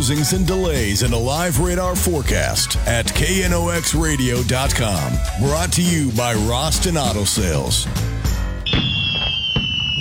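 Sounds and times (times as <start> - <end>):
speech: 0.0 - 8.3
fireworks exploding: 8.6 - 9.9
steady high whistling tone of fireworks: 8.6 - 9.9.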